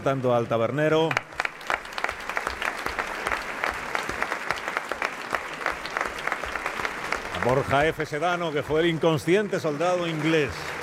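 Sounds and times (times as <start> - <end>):
speech: 0.0 - 1.3, 7.4 - 10.7
audience clapping for actors after a dramatized performance: 0.0 - 10.8.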